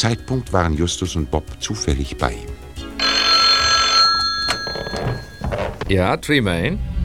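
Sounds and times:
speech: 0:00.0 - 0:02.6, 0:05.9 - 0:06.9
telephone bell ringing: 0:03.0 - 0:05.7.

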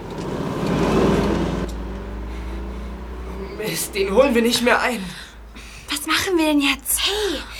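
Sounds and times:
car with headlights on approaching and rolling past: 0:00.0 - 0:05.7
car engine rumbling: 0:00.0 - 0:07.5
speech: 0:03.7 - 0:05.2, 0:06.0 - 0:07.5.

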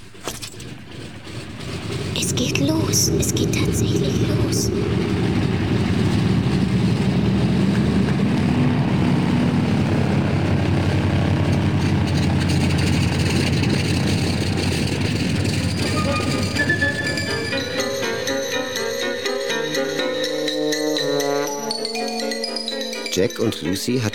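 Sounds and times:
airplane engine roaring during takeoff: 0:00.0 - 0:24.1
music: 0:02.1 - 0:04.8, 0:13.4 - 0:24.1
speech: 0:02.4 - 0:05.4, 0:23.6 - 0:24.1.

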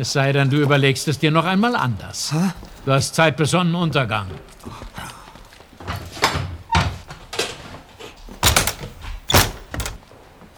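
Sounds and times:
speech: 0:00.0 - 0:05.0
door being shut: 0:08.3 - 0:10.0
heavy footsteps across a room: 0:08.3 - 0:10.0.

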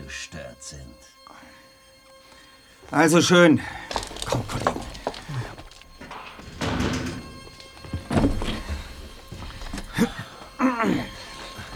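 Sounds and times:
speech: 0:00.1 - 0:01.2, 0:02.8 - 0:04.8
faint rustling: 0:03.6 - 0:11.7
knocks and bumps: 0:03.9 - 0:11.7
door closing with a dull heavy thud: 0:04.0 - 0:10.1.

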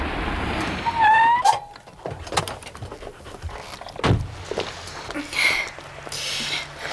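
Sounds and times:
car idling while parking in a side street: 0:00.0 - 0:06.9
small squeaks as people climb out: 0:00.9 - 0:02.8
car door clunks: 0:04.0 - 0:04.4.

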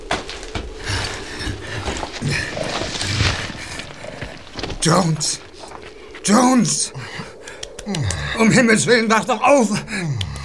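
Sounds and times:
horse hooves clattering to a halt: 0:00.0 - 0:06.3
speech: 0:04.8 - 0:05.5, 0:06.3 - 0:07.3, 0:07.9 - 0:10.3.

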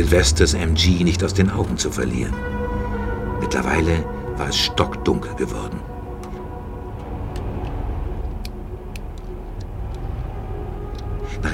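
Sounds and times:
speech: 0:00.0 - 0:02.6, 0:03.4 - 0:05.9
car engine rumble at night: 0:00.0 - 0:11.5
road noise from inside a moving car: 0:00.0 - 0:11.5.

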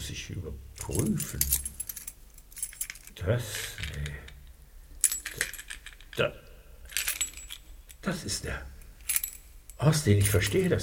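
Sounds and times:
speech: 0:00.1 - 0:01.7, 0:03.2 - 0:04.2, 0:06.2 - 0:06.4, 0:08.0 - 0:08.8, 0:09.8 - 0:10.8
metal keys on a ring jangling: 0:00.8 - 0:04.4, 0:05.0 - 0:06.2, 0:06.9 - 0:08.0, 0:08.8 - 0:10.8.

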